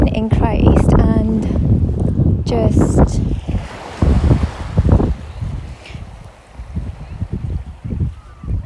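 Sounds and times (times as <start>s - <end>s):
gusty wind buffeting the microphone outdoors: 0.0s - 8.6s
speech: 2.5s - 3.4s
water of a body of water lapping and splashing: 3.1s - 8.6s.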